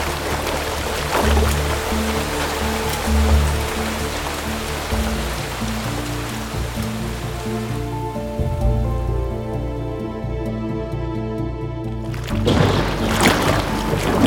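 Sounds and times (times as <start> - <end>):
people walking through floodwater on their street: 0.0 - 9.1, 12.0 - 14.2
steady heavy storm rain: 0.0 - 14.2
sustained musical tones: 0.0 - 14.2.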